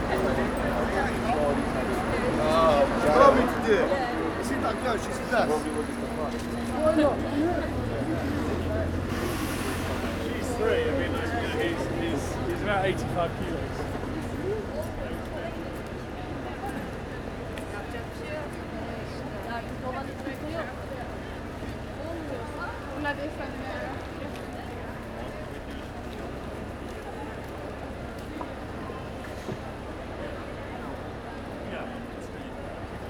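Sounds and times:
low engine rumble: 0.0 - 33.0
murmur of shoppers and lunchtime crowds on a busy shopping street: 0.0 - 33.0.

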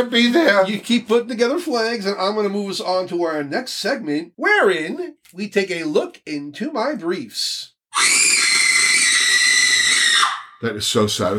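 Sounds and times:
speech: 0.0 - 8.2, 10.6 - 11.3
loud sustained high-pitched scream: 7.9 - 10.6.

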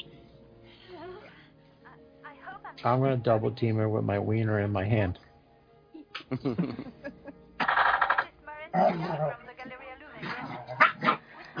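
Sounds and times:
speech: 2.4 - 5.2, 6.2 - 7.2, 8.8 - 9.8
laughter: 6.2 - 7.4
dogs barking: 10.2 - 11.5.

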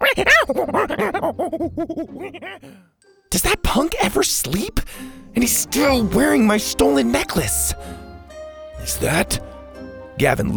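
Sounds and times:
chubby monkey howling and screeching angrily after being splashed with water: 0.0 - 2.8
speech: 0.2 - 8.0, 8.8 - 9.5, 10.2 - 10.5.

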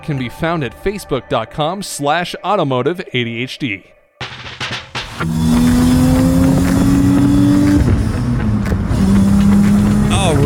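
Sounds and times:
speech: 0.0 - 4.0, 5.2 - 5.6
flat-six engine running: 5.0 - 10.4.

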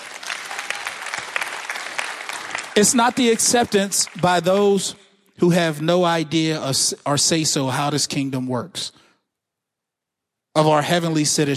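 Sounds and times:
large congregation applauding: 0.0 - 4.7
speech: 2.8 - 9.0, 10.6 - 11.5.

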